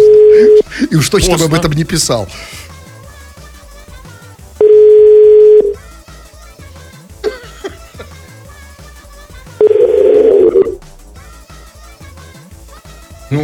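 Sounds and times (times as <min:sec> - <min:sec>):
ringback tones of an outgoing phone call: 0:00.0 - 0:00.7, 0:04.6 - 0:05.8, 0:09.6 - 0:10.8
speech: 0:00.9 - 0:02.7.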